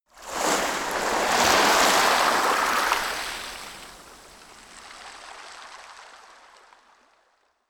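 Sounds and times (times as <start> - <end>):
soft surf on a coast: 0.2 - 6.8.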